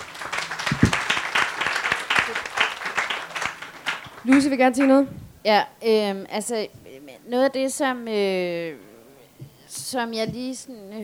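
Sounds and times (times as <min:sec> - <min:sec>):
audience applause: 0:00.0 - 0:05.0
speech: 0:04.2 - 0:08.9, 0:09.9 - 0:11.0.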